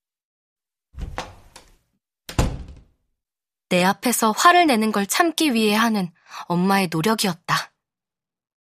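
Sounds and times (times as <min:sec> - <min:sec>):
bathroom door closing: 0:01.0 - 0:03.0
speech: 0:03.7 - 0:07.7.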